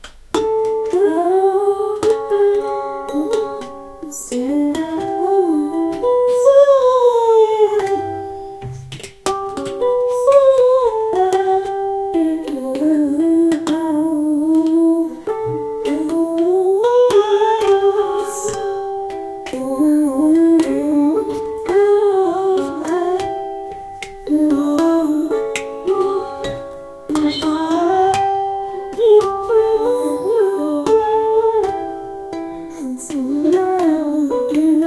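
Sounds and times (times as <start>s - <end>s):
funny Russian world music: 0.0s - 34.8s.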